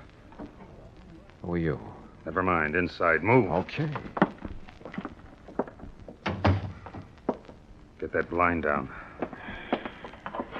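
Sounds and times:
speech: 1.4s - 4.2s, 8.1s - 9.0s
light knocks and rattles of a motel room door: 6.2s - 7.0s.

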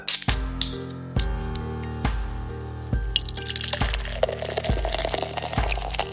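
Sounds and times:
steady evenly spaced musical notes: 0.0s - 6.1s
amber ale pouring into a glass: 3.4s - 6.1s.

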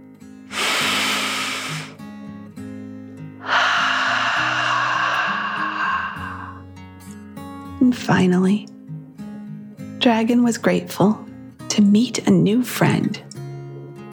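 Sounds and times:
soft gentle music: 0.0s - 14.1s
deep breath in and out: 0.5s - 2.0s, 3.4s - 6.8s
speech: 7.9s - 8.7s, 10.0s - 11.2s, 11.8s - 13.3s.

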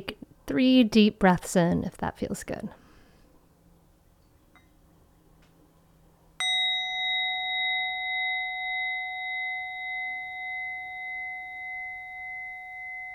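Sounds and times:
speech: 0.0s - 2.8s
meditation bell ringing: 6.4s - 13.1s.

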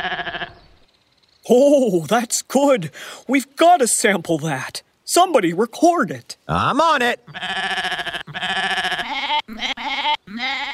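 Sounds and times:
goat bleating: 0.0s - 0.5s, 7.3s - 10.7s
speech: 1.5s - 8.6s.

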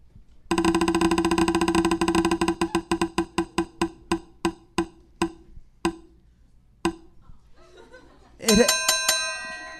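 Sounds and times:
prize wheel clicking as it spins: 0.5s - 4.0s
laughter: 7.3s - 8.6s
bright ringing triple bell ding: 8.5s - 9.7s.

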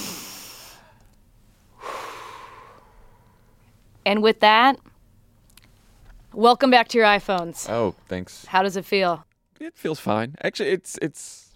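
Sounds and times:
person taking a deep breath: 0.0s - 3.6s
speech: 4.0s - 4.9s, 6.4s - 11.4s.

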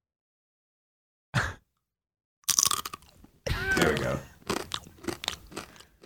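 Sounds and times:
chip being bitten and chewed: 2.4s - 6.0s
person speaking: 3.5s - 4.6s.

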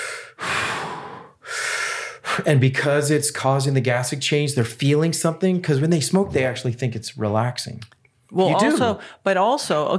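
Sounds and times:
heavy breaths through a breath-training device: 0.0s - 2.4s
speech: 2.4s - 9.9s.

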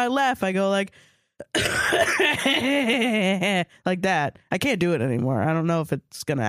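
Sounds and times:
speech: 0.0s - 6.4s
raspy coughing fit: 1.5s - 2.9s.

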